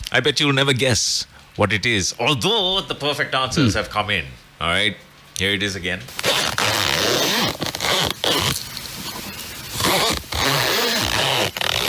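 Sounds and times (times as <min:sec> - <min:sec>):
speech: 0:00.1 - 0:06.4
zipper being pulled back and forth: 0:06.2 - 0:11.8.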